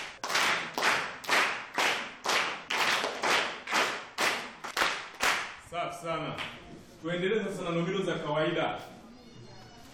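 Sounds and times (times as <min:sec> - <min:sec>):
pupils in a classroom clapping rhythmically: 0:00.0 - 0:05.6
speech: 0:05.8 - 0:08.9.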